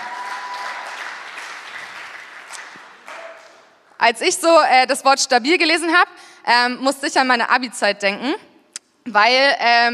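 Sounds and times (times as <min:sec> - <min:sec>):
sustained audience applause: 0:00.0 - 0:03.6
speech: 0:04.0 - 0:09.9.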